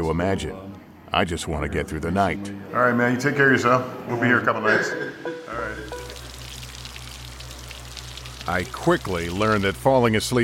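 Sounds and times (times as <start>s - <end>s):
speech: 0.0s - 5.9s, 8.5s - 10.4s
prison toilet flushing: 5.5s - 10.4s
low mechanical hum: 5.8s - 10.4s.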